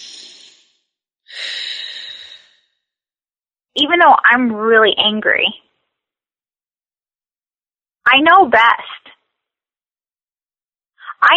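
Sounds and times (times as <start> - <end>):
person taking a deep breath: 1.3 - 2.7
speech: 3.8 - 5.6, 8.1 - 9.2.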